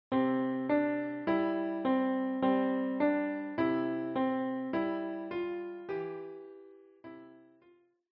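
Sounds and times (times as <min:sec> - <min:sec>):
nursery tune on piano: 0:00.1 - 0:07.7.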